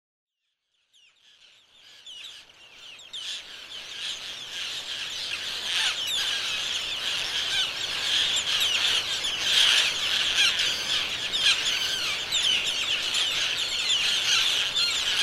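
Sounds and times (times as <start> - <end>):
roseate terns calling as a group: 1.2 - 15.2.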